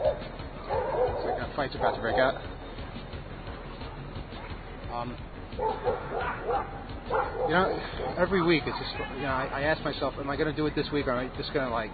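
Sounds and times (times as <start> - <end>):
several dogs barking and yipping at a dog run in a park: 0.0 - 2.6, 3.8 - 4.7, 5.5 - 9.8
outdoor voices: 0.0 - 11.9
speech: 1.5 - 2.6, 4.9 - 11.9.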